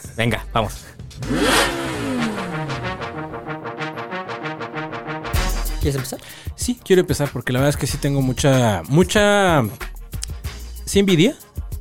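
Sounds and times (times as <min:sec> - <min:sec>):
speech: 0:00.2 - 0:01.9, 0:05.8 - 0:09.9, 0:10.9 - 0:11.4
car engine cranking, starting, revving and idling: 0:01.1 - 0:04.0.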